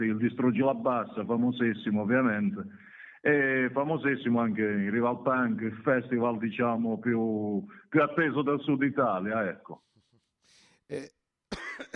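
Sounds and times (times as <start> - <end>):
speech: 0.0 - 11.2, 11.8 - 11.9
person coughing: 11.0 - 11.9.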